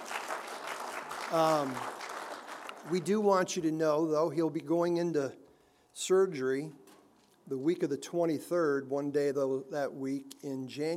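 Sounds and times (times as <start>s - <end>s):
congregation applauding: 0.0s - 3.4s
speech: 1.3s - 2.0s, 2.8s - 5.4s, 6.0s - 6.8s, 7.5s - 10.9s.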